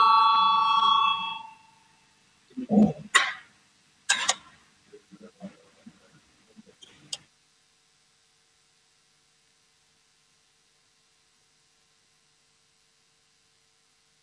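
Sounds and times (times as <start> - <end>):
parliament voting call bell ringing: 0.0 - 1.8
faint murmuring in a hall: 2.5 - 3.1, 4.9 - 7.2.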